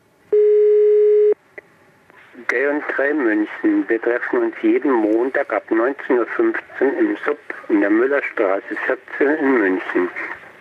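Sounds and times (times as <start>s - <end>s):
telephone ringing tone of an unanswered call: 0.3s - 1.4s
speech: 2.5s - 10.3s.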